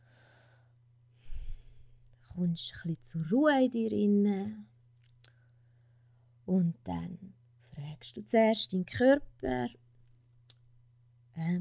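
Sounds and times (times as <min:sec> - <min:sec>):
person breathing in and out: 0:00.0 - 0:02.0
speech: 0:02.4 - 0:04.7, 0:06.5 - 0:09.8, 0:11.4 - 0:11.5.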